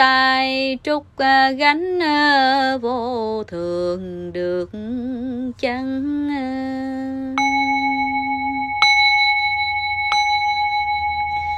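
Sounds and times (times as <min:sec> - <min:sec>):
speech: 0:00.7 - 0:07.7
lower tone: 0:07.2 - 0:11.5
bell ringing: 0:07.4 - 0:11.5.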